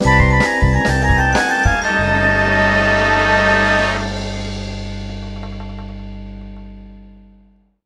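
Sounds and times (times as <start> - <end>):
guitar: 0.0 - 7.4.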